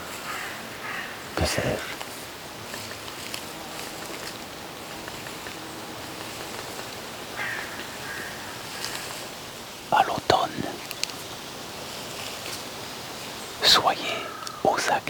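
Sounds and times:
crows cawing: 0.0 - 1.9, 7.2 - 9.3, 13.6 - 15.0
faint rustling: 0.0 - 14.7
outdoor ambience: 0.0 - 15.0
speech: 1.4 - 2.0, 13.7 - 15.0.

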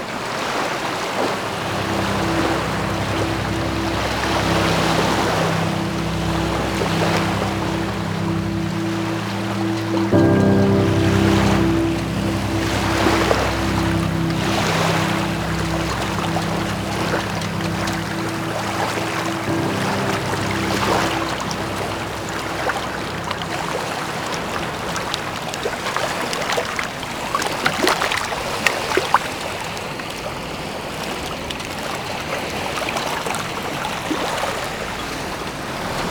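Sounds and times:
waves of a rising tide washing onto the shore: 0.0 - 36.0
low hum: 1.2 - 26.1.

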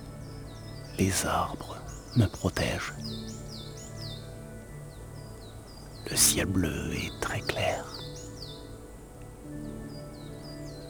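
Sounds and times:
birds singing outdoors among sheltering trees under a clear blue sky: 0.0 - 10.8
speech: 1.0 - 3.5, 6.1 - 8.1.

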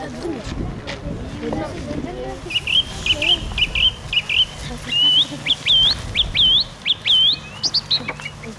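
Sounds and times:
low rustling outdoor background: 0.0 - 8.5
song thrush singing whistled phrases: 2.4 - 8.5.

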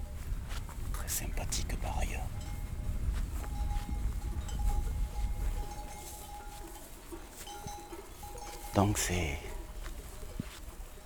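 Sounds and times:
flock of ewes grazing on green grass in a pasture: 0.0 - 11.0
soft rustling: 0.0 - 11.0
faint bell clinks: 2.2 - 11.0
speech: 8.8 - 9.5.

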